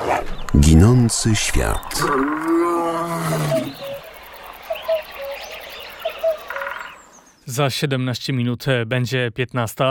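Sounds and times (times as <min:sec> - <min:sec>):
faint birds chirping: 0:00.0 - 0:08.5
speech: 0:00.1 - 0:02.6, 0:03.3 - 0:03.9, 0:07.5 - 0:09.8
lion roaring: 0:01.8 - 0:03.8.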